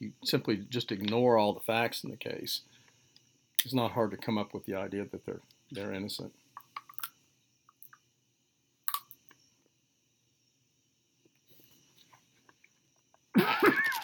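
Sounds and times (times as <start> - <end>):
speech: 0.0 - 2.8, 3.6 - 6.4
faint steady high hum: 0.0 - 14.0
loud cough: 13.4 - 14.0.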